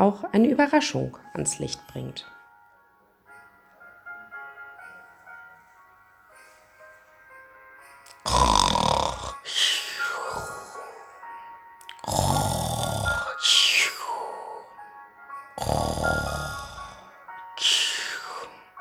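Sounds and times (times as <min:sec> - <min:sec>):
speech: 0:00.0 - 0:02.3
soft tonal music: 0:00.0 - 0:18.7
loud snoring: 0:08.1 - 0:11.1, 0:11.9 - 0:14.4, 0:15.6 - 0:18.4.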